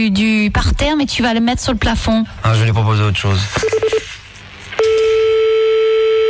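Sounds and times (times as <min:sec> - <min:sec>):
speech: 0:00.0 - 0:04.0
telephone ringing tone while calling back after being cut off: 0:03.6 - 0:04.0, 0:04.8 - 0:06.2.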